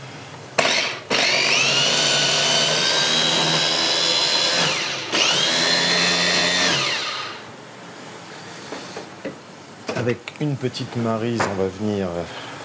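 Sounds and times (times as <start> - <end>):
electric blender blending mint leaves with wholegrain mustard: 0.6 - 7.5
speech: 10.1 - 12.4.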